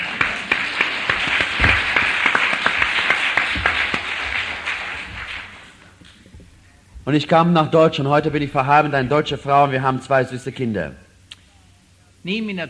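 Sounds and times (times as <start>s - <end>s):
crowd applauding: 0.0s - 5.9s
speech: 7.1s - 11.0s, 12.2s - 12.6s.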